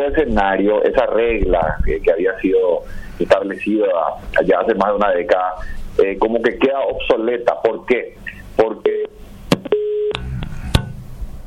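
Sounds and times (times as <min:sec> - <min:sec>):
speech: 0:00.0 - 0:09.1
faint noisy telephone line: 0:00.0 - 0:10.4
steady low telephone tone as a call cuts off: 0:08.3 - 0:10.6
short telephone beeps as a call cuts off: 0:09.7 - 0:10.2.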